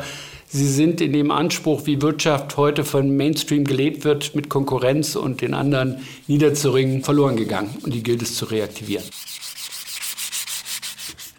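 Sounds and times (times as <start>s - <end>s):
speech: 0.5s - 9.4s
hand sanding of an old 17th-century carved figure of a Dominican: 5.2s - 11.3s.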